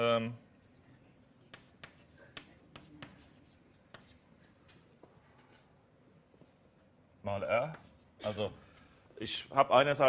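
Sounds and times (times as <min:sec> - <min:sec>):
speech: 0:00.0 - 0:00.5, 0:07.3 - 0:08.6, 0:09.2 - 0:10.0
handwriting scratching strokes: 0:01.5 - 0:04.2.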